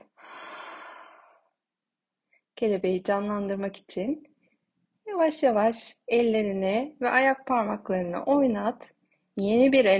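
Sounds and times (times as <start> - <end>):
deep breath in through nose and out through mouth: 0.1 - 1.4
speech: 2.6 - 4.3, 5.2 - 9.9.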